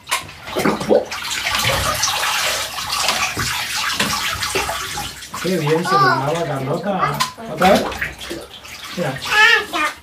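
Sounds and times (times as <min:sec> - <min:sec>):
bath water splashing and sloshing as a child's feet are washed: 0:00.0 - 0:10.0
speech: 0:05.4 - 0:08.4, 0:09.0 - 0:09.9.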